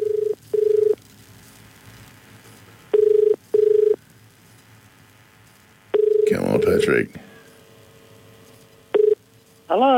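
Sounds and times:
telephone ringing tone over the line: 0.0 - 1.0, 2.9 - 4.0, 5.9 - 6.5, 8.9 - 9.2
faint noise: 0.0 - 9.9
speech: 6.8 - 7.3, 9.7 - 9.9.

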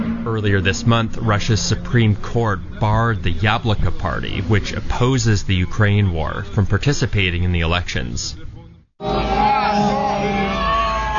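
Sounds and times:
speech: 0.3 - 9.1
dense crowd chanting in unison outside a courthouse in Russia: 9.0 - 11.1.

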